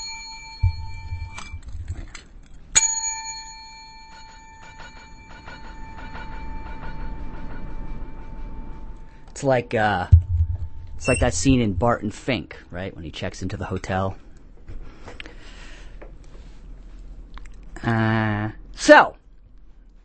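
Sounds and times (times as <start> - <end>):
bell ringing: 0.0 - 1.8, 2.8 - 9.3
low rumbling: 7.0 - 12.5
speech: 9.4 - 10.2, 11.0 - 14.2, 17.8 - 19.2.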